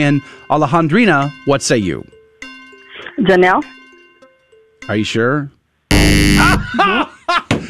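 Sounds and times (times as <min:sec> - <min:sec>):
speech: 0:00.0 - 0:02.2, 0:03.2 - 0:03.8, 0:04.8 - 0:07.4
loud harsh quiz game-show buzzer: 0:05.9 - 0:06.7
laughter: 0:06.4 - 0:07.6.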